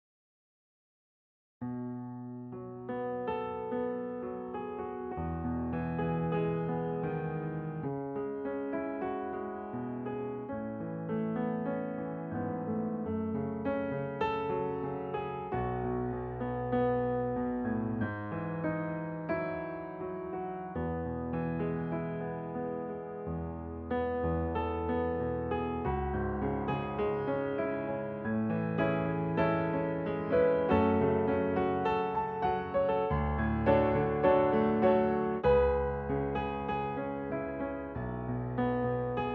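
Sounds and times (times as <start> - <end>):
solo piano: 1.6 - 39.3.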